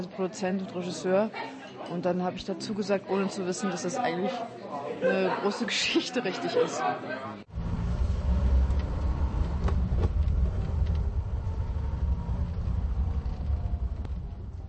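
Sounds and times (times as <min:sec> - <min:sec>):
speech: 0:00.0 - 0:07.5
car driving on a rough unpaved road: 0:07.5 - 0:14.6.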